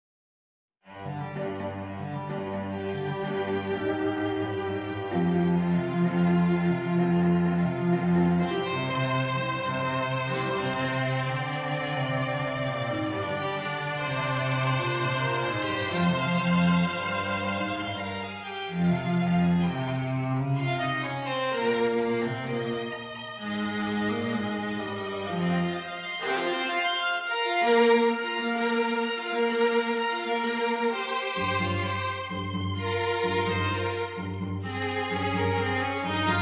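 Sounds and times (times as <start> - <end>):
string vignette: 0.8 - 36.4.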